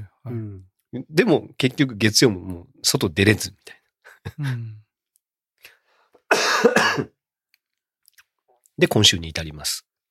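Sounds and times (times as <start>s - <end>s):
speech: 0.2s - 4.8s, 6.3s - 7.2s, 8.8s - 9.9s
harsh wet cough lingering after influenza: 6.3s - 7.2s.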